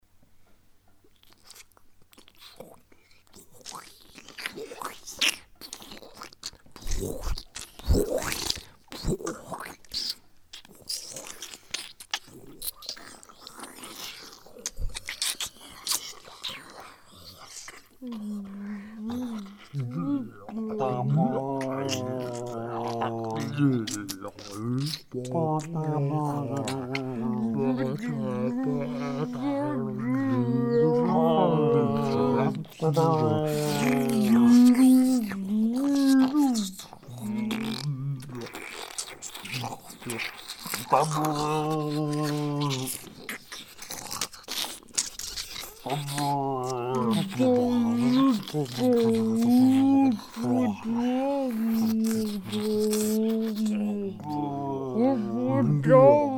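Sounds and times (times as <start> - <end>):
hippopotamus: 3.6 - 56.3.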